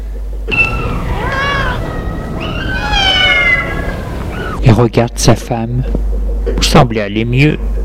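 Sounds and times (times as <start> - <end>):
low steady rumble: 0.0 - 5.4
cat meowing: 0.5 - 4.6
speech: 4.8 - 7.8.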